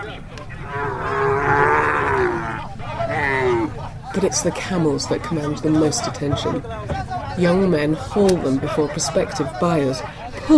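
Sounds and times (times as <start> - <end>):
low rumble of noise from a busy outdoor livestock market: 0.0 - 10.5
cow mooing at a busy outdoor livestock market: 0.6 - 3.8
speech: 4.2 - 10.5.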